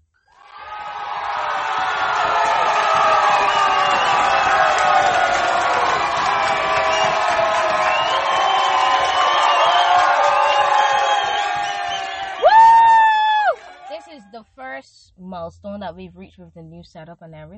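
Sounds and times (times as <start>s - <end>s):
large crowd cheering and whooping: 0.3s - 14.1s
speech: 15.5s - 17.5s.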